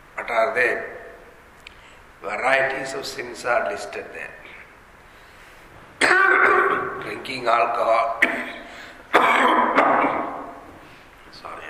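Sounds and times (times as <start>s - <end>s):
speech: 0.3s - 1.0s, 2.2s - 4.4s, 7.2s - 8.5s
person coughing: 6.0s - 7.0s, 8.2s - 10.6s.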